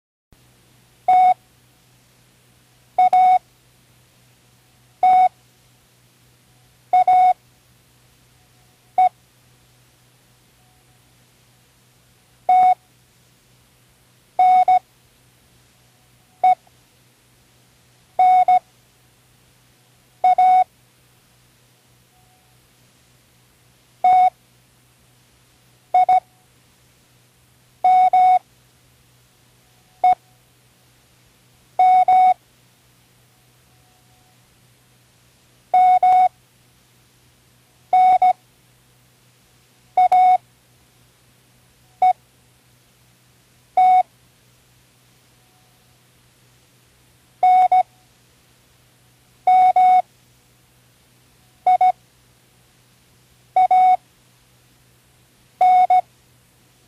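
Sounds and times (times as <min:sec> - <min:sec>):
morse code beeps: 0:01.1 - 0:01.4, 0:03.0 - 0:03.4, 0:05.0 - 0:05.3, 0:07.0 - 0:07.4, 0:12.5 - 0:12.8, 0:14.4 - 0:14.8, 0:18.2 - 0:18.6, 0:20.2 - 0:20.7, 0:24.0 - 0:24.3, 0:26.0 - 0:26.2, 0:27.9 - 0:28.4, 0:31.8 - 0:32.4, 0:35.8 - 0:36.3, 0:38.0 - 0:38.4, 0:40.0 - 0:40.4, 0:43.8 - 0:44.0, 0:47.4 - 0:47.8, 0:49.5 - 0:50.0, 0:51.7 - 0:52.0, 0:53.6 - 0:54.0, 0:55.6 - 0:56.0.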